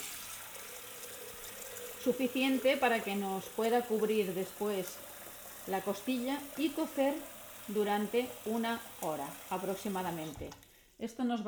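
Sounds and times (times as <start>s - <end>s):
water pouring into a tall stainless steel cooking pot: 0.0s - 11.0s
speech: 2.0s - 11.4s.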